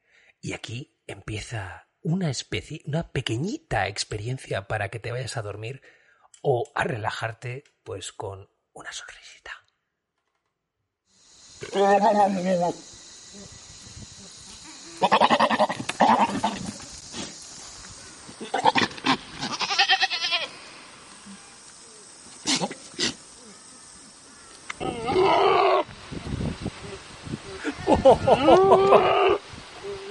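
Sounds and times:
speech: 0.4 - 9.6, 11.6 - 13.6, 15.0 - 16.8, 28.0 - 29.4
goat bleating: 14.9 - 16.6, 18.4 - 20.5, 24.8 - 25.8
laughter: 27.6 - 29.1.

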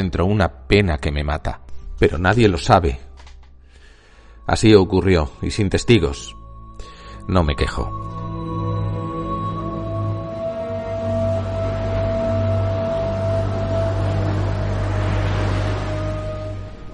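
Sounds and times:
speech: 0.0 - 3.1, 4.5 - 6.4, 7.3 - 8.1
constant low droning hum: 8.0 - 16.9
stormy sea waves: 8.9 - 16.9.

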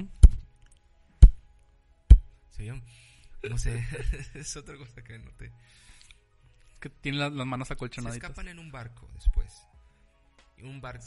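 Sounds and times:
imitated movie-style punch sound effects: 0.0 - 0.4, 2.1 - 2.3
speech: 2.6 - 6.0, 6.8 - 9.7, 10.6 - 11.0
laughter: 3.4 - 4.9.

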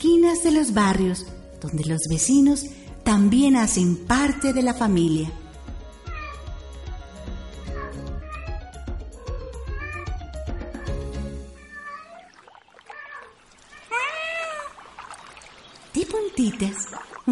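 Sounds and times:
speech: 0.0 - 5.4
rhythmic music: 0.0 - 11.7
cat meowing: 6.0 - 6.6, 7.6 - 14.8.

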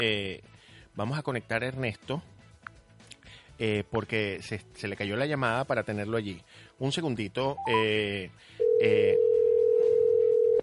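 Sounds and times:
speech: 0.0 - 2.4, 3.6 - 9.3
telephone dial tone while placing a call: 8.6 - 10.6.

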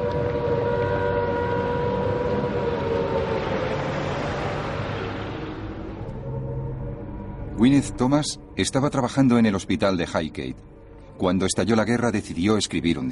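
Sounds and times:
air raid sirens wailing: 0.0 - 8.9
speech: 7.6 - 13.0.

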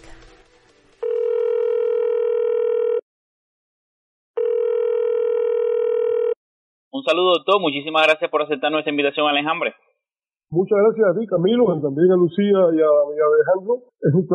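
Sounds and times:
telephone dial tone: 1.0 - 3.0, 4.4 - 6.4
speech: 7.1 - 9.9, 10.5 - 14.3.

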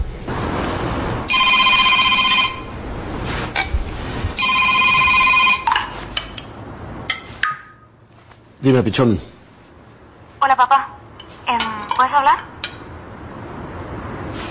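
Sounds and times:
room noise: 0.0 - 14.4
phone ringing with electronic trill: 1.3 - 2.8, 4.4 - 6.0
speech: 8.6 - 9.3.

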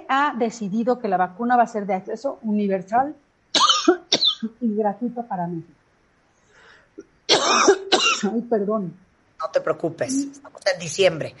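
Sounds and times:
speech: 0.1 - 3.2, 4.4 - 5.8, 7.0 - 11.3
person coughing: 3.6 - 4.4, 7.3 - 8.4.

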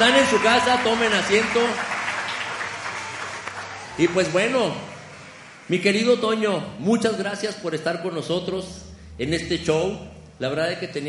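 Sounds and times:
speech: 0.0 - 1.9, 4.0 - 4.9, 5.7 - 11.0
audience applause: 0.0 - 5.8.

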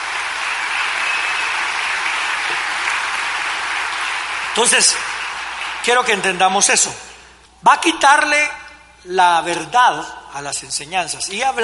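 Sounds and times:
large crowd applauding loudly: 0.0 - 6.9
speech: 4.6 - 5.1, 5.8 - 11.6.

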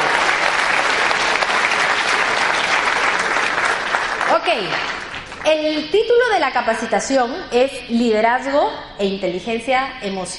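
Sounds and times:
audience applause: 0.0 - 5.4
speech: 4.5 - 10.3.

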